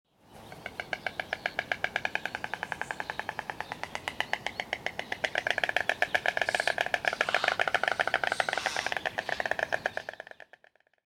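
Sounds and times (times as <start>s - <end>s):
white stork bill clattering: 0.5s - 11.0s.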